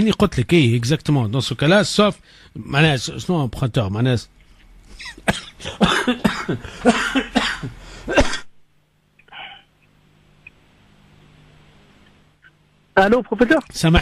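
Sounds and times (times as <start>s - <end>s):
speech: 0.0s - 4.4s, 5.0s - 8.4s, 13.0s - 14.0s
person coughing hard: 5.0s - 8.5s.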